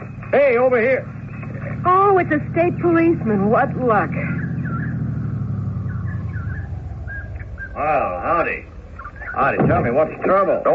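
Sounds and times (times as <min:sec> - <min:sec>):
car engine rumbling: 0:00.0 - 0:10.7
speech: 0:00.3 - 0:01.2, 0:01.8 - 0:04.4, 0:07.8 - 0:08.7, 0:09.4 - 0:10.7.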